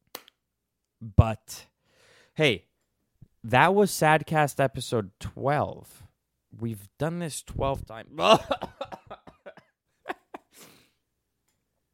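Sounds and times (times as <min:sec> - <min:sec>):
speech: 0:01.0 - 0:01.7, 0:02.4 - 0:02.7, 0:03.4 - 0:08.7
raspy exhale: 0:01.8 - 0:02.4, 0:10.5 - 0:11.0
person coughing: 0:08.2 - 0:09.7
laughter: 0:08.2 - 0:10.5.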